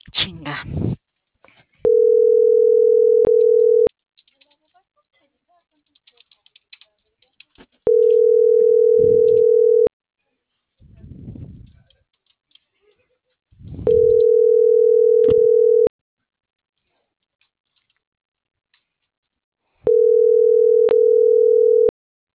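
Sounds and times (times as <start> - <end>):
ringback tone of an unanswered telephone call: 1.9 - 3.9, 7.9 - 9.9, 13.9 - 15.9, 19.9 - 21.9.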